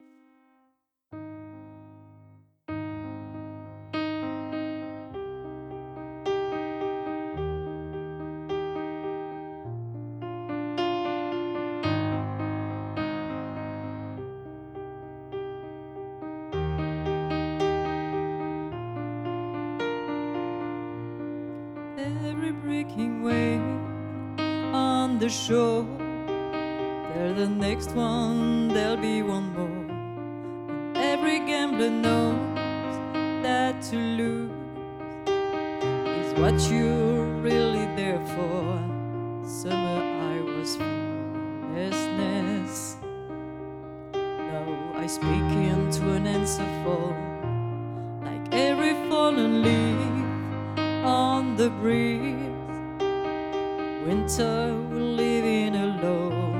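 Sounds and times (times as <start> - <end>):
piano duet: 0.0 - 56.5
voice: 22.0 - 23.8, 24.8 - 26.0, 27.2 - 29.9, 31.0 - 32.5, 33.5 - 34.6, 36.2 - 38.9, 39.6 - 40.9, 41.8 - 43.0, 44.5 - 47.3, 48.3 - 50.4, 51.1 - 52.6.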